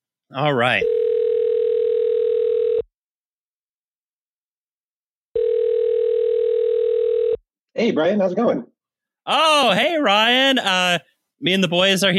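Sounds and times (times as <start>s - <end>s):
speech: 0.3s - 1.0s, 7.8s - 12.1s
telephone tone as a phone call is dialed: 0.8s - 2.9s, 5.3s - 7.4s.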